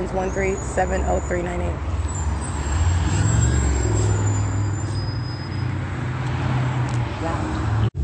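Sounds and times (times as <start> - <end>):
thin high bus brake whine: 0.0 - 6.3
city bus engine rumble pulling in at a stop: 0.0 - 8.0
speech: 0.1 - 2.0.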